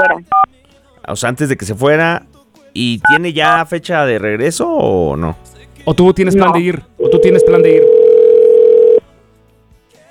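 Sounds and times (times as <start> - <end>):
telephone line tone on an international call: 0.0 - 0.2, 7.0 - 9.0
speech: 0.0 - 0.4, 1.1 - 8.0.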